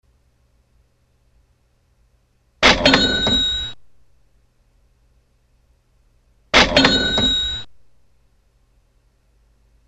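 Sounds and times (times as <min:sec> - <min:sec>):
cash register: 0:02.6 - 0:03.8, 0:06.6 - 0:07.7.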